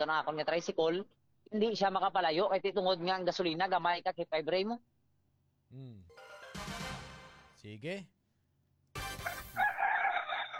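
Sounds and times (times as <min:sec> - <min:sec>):
speech: 0:00.0 - 0:04.9, 0:05.7 - 0:06.4, 0:07.6 - 0:08.2
rooster crowing: 0:09.2 - 0:10.5.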